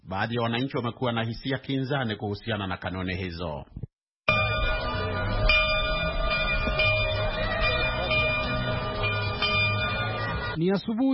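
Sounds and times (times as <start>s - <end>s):
speech: 0.1s - 3.8s, 10.6s - 11.1s
church bells ringing in the morning: 4.3s - 10.6s
low rumble: 4.3s - 10.6s.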